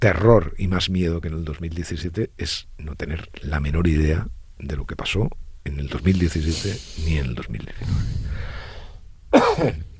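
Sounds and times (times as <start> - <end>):
speech: 0.0 - 8.2, 9.3 - 9.9
low rumble: 0.0 - 9.9
person coughing with rough throat clearing: 9.3 - 9.9.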